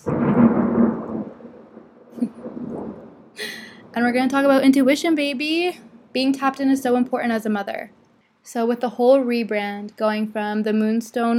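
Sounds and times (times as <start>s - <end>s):
deep rumble of thunder: 0.0s - 7.9s
speech: 4.0s - 11.3s.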